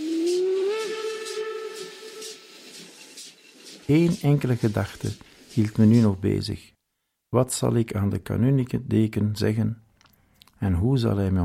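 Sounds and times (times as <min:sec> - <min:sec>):
steam train whistle as train departs: 0:00.0 - 0:02.9
rhythmic puffs of hissing steam from a departing steam train: 0:00.0 - 0:06.2
speech: 0:03.9 - 0:09.8, 0:10.6 - 0:11.4.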